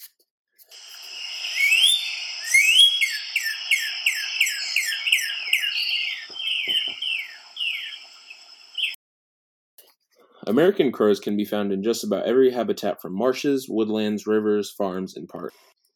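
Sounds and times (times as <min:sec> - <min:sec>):
Northern Cardinal song of clear downslurred whistles: 0:01.0 - 0:09.0
speech: 0:10.5 - 0:15.7.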